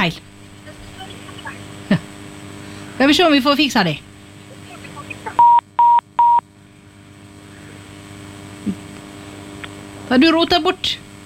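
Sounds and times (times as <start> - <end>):
speech: 0.0 - 0.3, 3.0 - 4.1, 10.1 - 11.0
steady low electrical hum: 0.0 - 11.2
telephone dialing beeps: 5.4 - 6.4.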